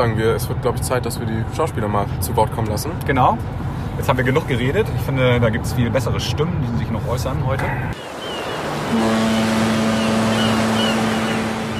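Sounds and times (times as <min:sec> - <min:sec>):
speech: 0:00.0 - 0:08.2, 0:08.9 - 0:09.6
road noise inside a moving car: 0:00.0 - 0:11.7
droning car engine hum: 0:07.6 - 0:11.7.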